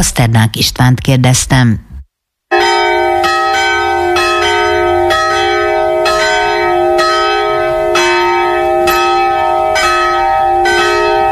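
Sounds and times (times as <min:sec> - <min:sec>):
speech: 0:00.0 - 0:01.9
noon bells of the Reformed church in Radoscsány ringing: 0:02.5 - 0:11.2.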